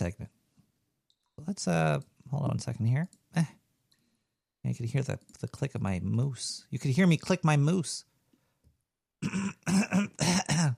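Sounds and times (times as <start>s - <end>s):
speech: 1.4s - 3.6s, 4.6s - 8.1s, 9.2s - 10.1s
throat clearing: 9.2s - 10.7s.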